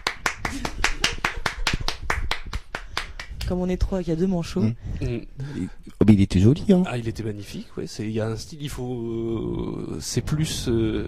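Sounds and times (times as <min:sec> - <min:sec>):
audience applause: 0:00.0 - 0:03.1
speech: 0:03.5 - 0:11.0.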